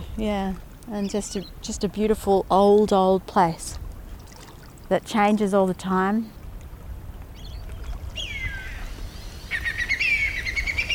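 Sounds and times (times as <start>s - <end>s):
speech: 0.2s - 3.8s, 4.9s - 6.4s
whistling kite calling: 8.2s - 10.9s.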